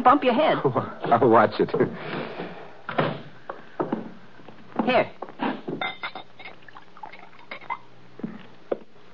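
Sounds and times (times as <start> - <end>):
speech: 0.0 - 2.6, 4.8 - 5.2
drink pouring into a glass inside a wagon used as a home: 6.2 - 7.7.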